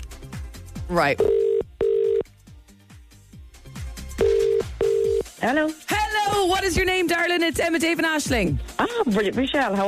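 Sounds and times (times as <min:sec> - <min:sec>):
low thumping music: 0:00.0 - 0:09.8
speech: 0:00.9 - 0:01.4, 0:05.4 - 0:09.8
telephone ringing tone as a call is placed: 0:01.2 - 0:02.3, 0:04.2 - 0:05.2.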